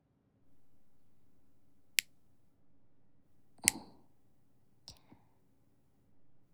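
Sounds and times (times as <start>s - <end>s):
nail clippers cutting fingernails: 0.5s - 2.5s, 3.4s - 5.0s.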